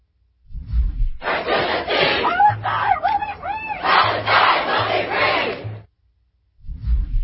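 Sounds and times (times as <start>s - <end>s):
crowd of protesters chanting a slogan: 1.2s - 5.9s.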